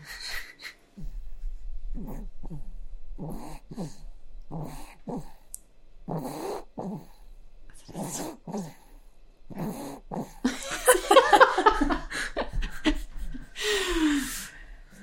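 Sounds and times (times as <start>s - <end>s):
snoring: 1.9s - 10.4s
laughter: 10.5s - 13.7s.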